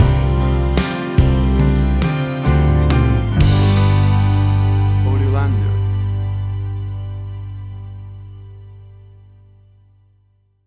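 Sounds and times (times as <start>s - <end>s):
acoustic country soft rock ballad music stinger: 0.0s - 8.2s.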